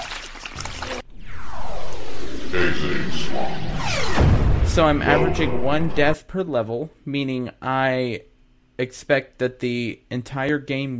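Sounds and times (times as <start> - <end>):
video game geyser water gushing: 0.0 - 1.0
speech: 2.5 - 10.9.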